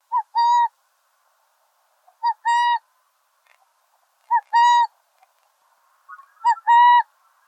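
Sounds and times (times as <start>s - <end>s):
burrowing owl giving a two-part hoot: 0.1s - 0.7s, 2.1s - 2.8s, 6.0s - 7.4s.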